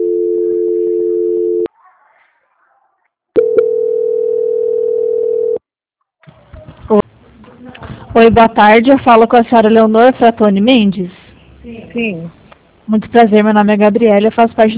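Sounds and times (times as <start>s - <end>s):
telephone line tones of a call being transferred: 0.0s - 1.7s, 3.4s - 5.6s
speech: 8.2s - 14.7s.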